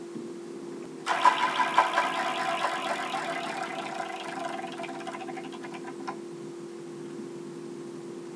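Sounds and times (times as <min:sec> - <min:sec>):
steady low hum: 0:01.0 - 0:06.2
prize wheel spinning and ticking: 0:01.1 - 0:06.0.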